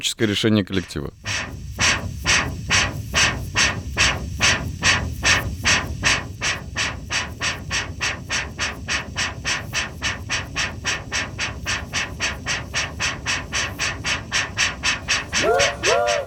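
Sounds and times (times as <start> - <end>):
speech: 0.0 - 1.6
train chugging as it pulls away: 0.1 - 16.2
whistle-like tone: 15.1 - 16.2.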